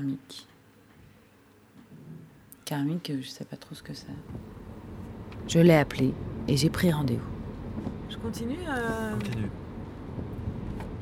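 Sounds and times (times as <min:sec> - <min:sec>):
speech: 0:00.0 - 0:00.5, 0:02.7 - 0:04.6, 0:05.5 - 0:09.6
road and engine rumble inside a moving car: 0:04.2 - 0:11.0.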